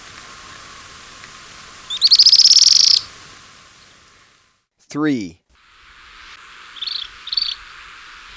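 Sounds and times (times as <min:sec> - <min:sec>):
streak-backed canastero trilling in Ecuador: 0:01.9 - 0:03.1, 0:06.7 - 0:07.7
speech: 0:04.9 - 0:05.4.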